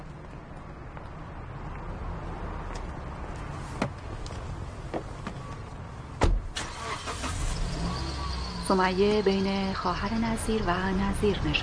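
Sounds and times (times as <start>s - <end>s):
car driving off with low steady engine rumble: 0.0s - 11.6s
speech: 8.7s - 11.6s.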